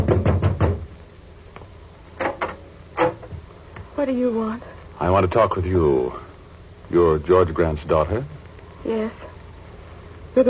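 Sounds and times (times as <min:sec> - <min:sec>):
knocking on the front door of a home: 0:00.0 - 0:00.9
speech: 0:04.0 - 0:06.2, 0:06.9 - 0:09.3.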